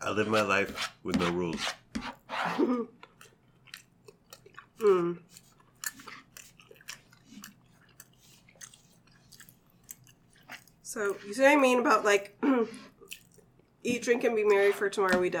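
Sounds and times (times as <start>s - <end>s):
speech: 0.1s - 1.8s, 2.6s - 3.0s, 4.8s - 5.4s, 10.9s - 12.9s, 13.8s - 15.3s
person chewing kale leaves dipped in chutney: 3.0s - 11.3s, 12.5s - 13.8s.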